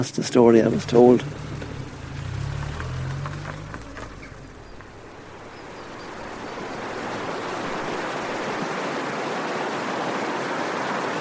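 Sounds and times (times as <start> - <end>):
speech: 0.0 - 1.5
low rumbles: 0.3 - 8.6
river water rushing: 0.6 - 11.1.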